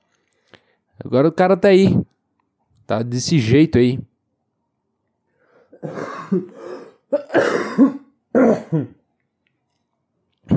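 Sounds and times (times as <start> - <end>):
speech: 1.0 - 2.1, 2.9 - 4.1, 5.8 - 9.0
person coughing: 5.7 - 9.0
person clearing their throat: 5.8 - 9.0.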